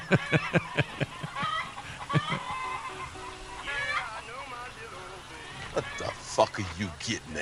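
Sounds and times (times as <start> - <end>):
Rhode Island Red chicken drawn-out squawk: 0.0 - 4.2
laughter: 0.0 - 4.2, 5.5 - 7.3
Rhode Island Red chickens clucking: 0.0 - 7.3
faint noise: 0.0 - 7.3
speech: 0.1 - 1.2, 6.4 - 7.3.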